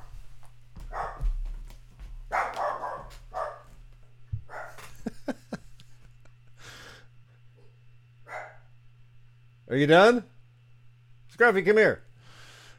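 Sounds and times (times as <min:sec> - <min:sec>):
steady low electrical hum: 0:00.0 - 0:12.7
dog barking: 0:00.9 - 0:01.4, 0:02.3 - 0:03.7, 0:04.4 - 0:04.9, 0:08.3 - 0:08.7
laughter: 0:04.8 - 0:06.6
speech: 0:09.7 - 0:10.3, 0:11.4 - 0:12.0.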